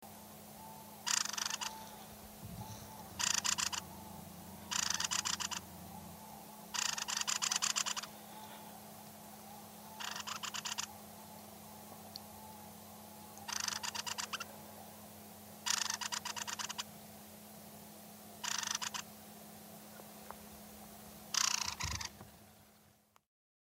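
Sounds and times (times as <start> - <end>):
Turdus viscivorus call: 0.4 - 15.0, 15.6 - 16.9, 18.4 - 19.1, 21.3 - 22.8.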